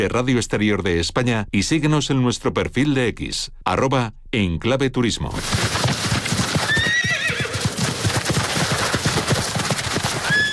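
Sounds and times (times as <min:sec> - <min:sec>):
speech: 0:00.0 - 0:05.8
horse hooves clip-clopping on a hard surface: 0:05.4 - 0:10.5
horse whinnying: 0:06.4 - 0:08.5, 0:10.1 - 0:10.5.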